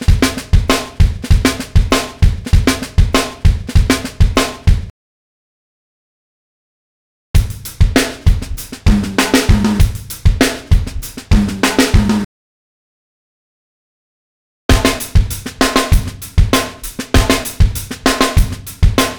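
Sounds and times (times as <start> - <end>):
hip hop drum fills at 98 BPM: 0.0 - 4.9, 7.4 - 12.3, 14.7 - 19.1.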